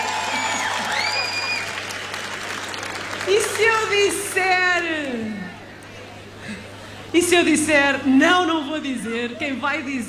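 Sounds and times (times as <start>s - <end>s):
concert audience applause: 0.0s - 4.9s
speech: 3.3s - 5.4s, 7.1s - 10.0s.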